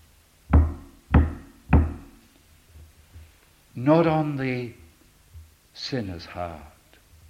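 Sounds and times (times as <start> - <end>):
firm knocks on a wooden surface: 0.5 - 2.2
speech: 3.8 - 4.8, 5.8 - 6.7.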